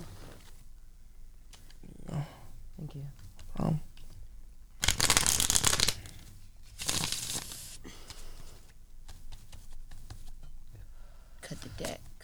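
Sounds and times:
speech: 2.9s - 3.9s
deck of tarot cards shuffled for a tarot reading: 4.8s - 10.4s.

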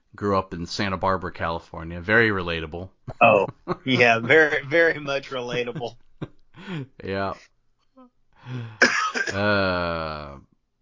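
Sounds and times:
speech: 0.2s - 7.5s, 8.4s - 10.5s
throaty cough: 8.7s - 9.7s.

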